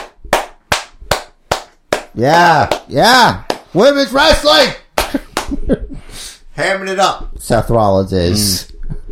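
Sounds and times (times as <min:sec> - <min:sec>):
wrestling audience clapping in time after a women's championship match: 0:00.0 - 0:03.8
speech: 0:02.2 - 0:08.7.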